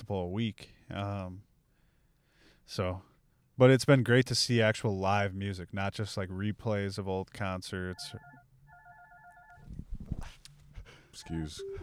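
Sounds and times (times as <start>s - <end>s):
noise: 0.0s - 11.8s
speech: 0.1s - 1.5s, 2.7s - 8.4s, 11.2s - 11.8s
mobile phone ringtone of bright electronic tones: 7.9s - 9.7s, 11.2s - 11.8s.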